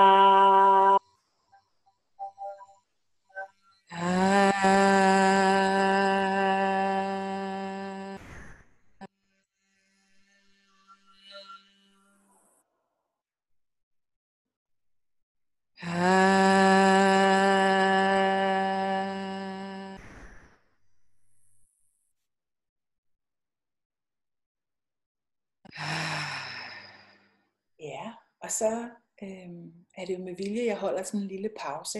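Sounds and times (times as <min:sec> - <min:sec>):
people singing a sustained ah tone together: 0:00.0 - 0:01.0, 0:03.9 - 0:08.2, 0:15.8 - 0:20.0
speech: 0:28.6 - 0:31.9.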